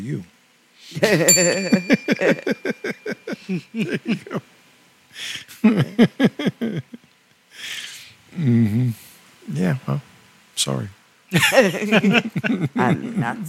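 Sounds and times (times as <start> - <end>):
speech: 0.0 - 4.5, 5.2 - 7.8, 8.4 - 13.4
rhythmic laughter: 1.0 - 4.4, 5.5 - 7.0, 11.3 - 12.8
bell ringing: 1.3 - 3.4.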